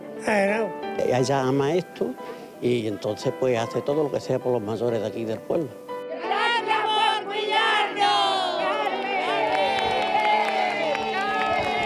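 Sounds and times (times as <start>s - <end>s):
speech: 0.2s - 5.8s
voices cheering and calling out: 6.1s - 11.8s
crowd clapping for a care worker: 8.6s - 11.8s.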